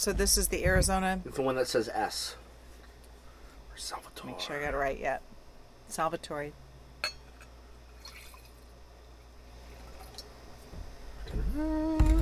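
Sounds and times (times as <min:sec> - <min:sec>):
speech: 0:00.0 - 0:02.4, 0:03.8 - 0:05.3, 0:05.9 - 0:06.6, 0:11.6 - 0:12.1
wine pouring into a glass: 0:08.0 - 0:08.7, 0:09.6 - 0:10.3.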